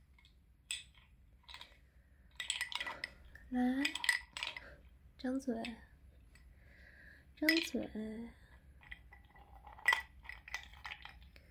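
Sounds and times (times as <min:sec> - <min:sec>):
ice cubes clinking: 0:00.7 - 0:04.8, 0:08.8 - 0:11.4
speech: 0:03.5 - 0:03.9, 0:05.2 - 0:05.9, 0:07.4 - 0:08.4.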